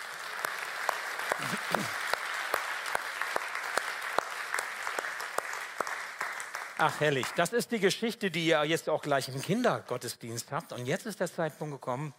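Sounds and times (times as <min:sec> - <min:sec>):
small audience clapping during a church service: 0:00.0 - 0:08.0
speech: 0:01.4 - 0:02.1, 0:06.8 - 0:12.1.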